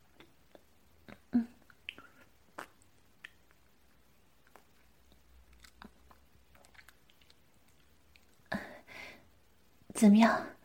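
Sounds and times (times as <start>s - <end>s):
quiet chewing of soft juicy dumplings: 0.0s - 8.5s
mouth smacking: 0.1s - 8.6s.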